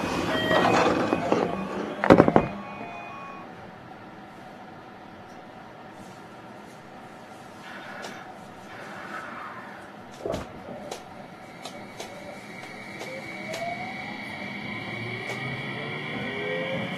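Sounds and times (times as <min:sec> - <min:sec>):
Tsukuba Express electric commuter train pulling away: 0:00.0 - 0:04.0, 0:07.4 - 0:10.1, 0:10.7 - 0:16.9
train clunks and rattles: 0:00.5 - 0:02.6.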